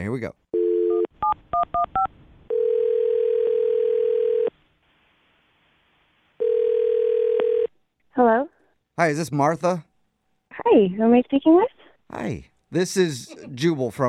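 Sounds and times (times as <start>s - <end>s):
speech: 0.0s - 0.4s, 8.2s - 9.9s, 10.5s - 14.0s
phone dial tone: 0.6s - 1.1s, 2.0s - 4.5s, 6.4s - 7.7s
buzzing ring of an outgoing phone call: 0.6s - 4.5s, 6.4s - 7.7s.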